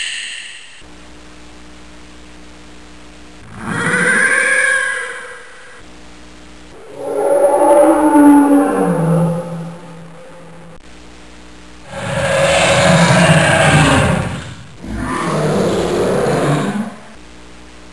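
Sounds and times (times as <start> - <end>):
roaring: 3.5 - 5.8, 6.7 - 10.8, 11.9 - 17.2.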